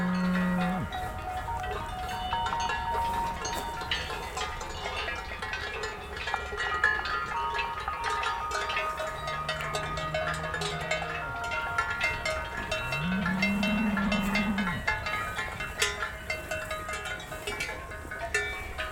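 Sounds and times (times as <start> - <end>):
Gascon cows mooing: 0.0 - 1.0, 9.0 - 11.8, 12.7 - 15.0
cowbells clanking on a herd of Gascon cows moving up onto mountain ridges: 0.0 - 18.9.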